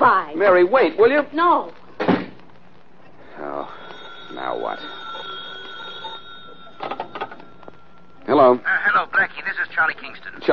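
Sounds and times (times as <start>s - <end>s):
speech: 0.4s - 1.8s, 4.3s - 5.0s, 8.3s - 10.5s
steady high tone: 3.2s - 10.5s
telephone bell ringing: 3.3s - 8.6s.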